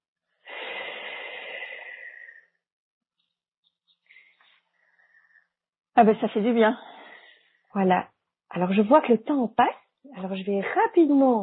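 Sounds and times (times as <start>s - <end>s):
deep breath in and out: 0.3s - 2.6s, 4.1s - 5.6s, 6.7s - 7.7s
speech: 6.0s - 6.9s, 7.7s - 11.4s.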